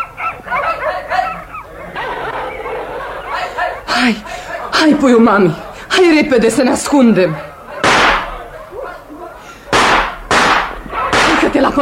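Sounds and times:
sled dogs barking and yelping: 0:00.0 - 0:04.7, 0:07.2 - 0:11.7
laughter: 0:00.5 - 0:05.9
speech: 0:04.0 - 0:07.5.

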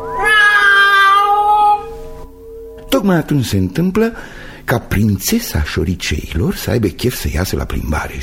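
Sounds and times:
cat meowing: 0:00.1 - 0:02.0
speech: 0:03.1 - 0:08.2.

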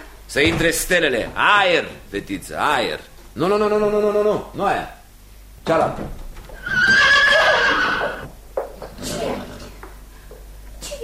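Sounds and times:
speech: 0:00.3 - 0:05.0, 0:05.6 - 0:06.2
horse neighing: 0:06.6 - 0:08.3.

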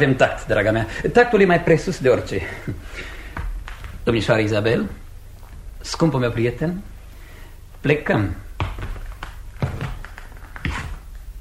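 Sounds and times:
speech: 0:00.0 - 0:03.2, 0:04.0 - 0:05.0, 0:05.8 - 0:06.9, 0:07.8 - 0:08.9
faint low hum: 0:00.0 - 0:11.4
slow footsteps on a hard floor toward a door: 0:03.3 - 0:04.0, 0:08.6 - 0:11.4.

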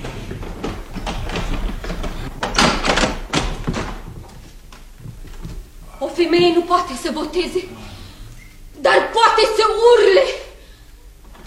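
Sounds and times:
wooden door being pulled open with rattling hardware: 0:00.0 - 0:05.6
speech: 0:06.2 - 0:07.9, 0:08.8 - 0:10.4.

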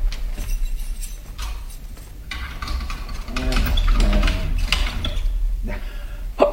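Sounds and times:
key turning in a door lock with metallic clicks and rattles: 0:00.4 - 0:05.4
ratcheting scrape of a door lock: 0:00.4 - 0:05.4.

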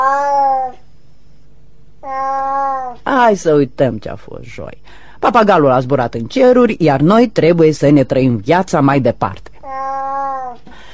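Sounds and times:
cat with dirty fur meowing: 0:00.0 - 0:00.8, 0:02.0 - 0:03.0, 0:09.6 - 0:10.6
speech: 0:03.2 - 0:09.8.

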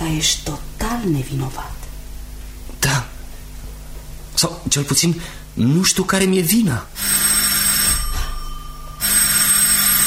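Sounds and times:
speech: 0:00.1 - 0:01.8, 0:04.4 - 0:07.3
doorbell with a metallic buzzing ring: 0:07.0 - 0:10.0.

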